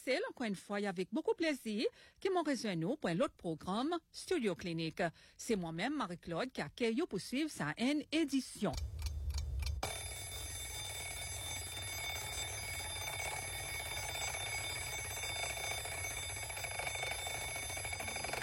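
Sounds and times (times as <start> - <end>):
speech: 0.0 - 8.9
electronic alarm clock ringing to wake someone up: 9.8 - 18.4.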